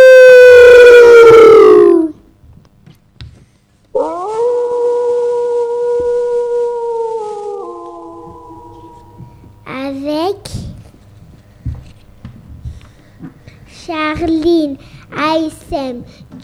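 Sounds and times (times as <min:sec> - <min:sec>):
wolf howling: 0:00.0 - 0:02.2, 0:04.0 - 0:09.5.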